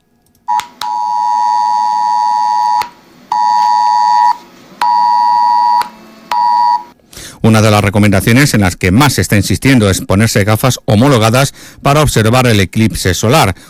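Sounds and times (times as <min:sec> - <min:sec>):
mobile phone Civil Protection emergency alert tone with eclipse advice: 0:00.5 - 0:06.9
speech: 0:07.6 - 0:13.6.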